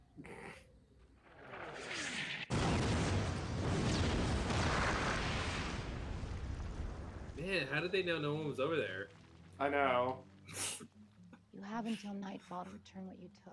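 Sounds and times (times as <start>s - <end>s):
missiles striking and exploding: 1.4s - 8.6s
speech: 7.4s - 10.6s, 11.6s - 13.5s.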